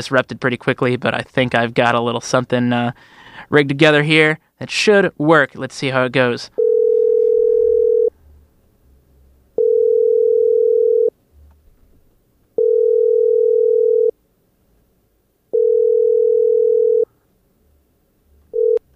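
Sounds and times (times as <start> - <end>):
speech: 0.0 - 6.6
telephone tone while a call is being placed: 6.6 - 8.1, 9.6 - 11.1, 12.6 - 14.1, 15.6 - 17.1, 18.5 - 18.8
faint low rumble: 6.6 - 18.9.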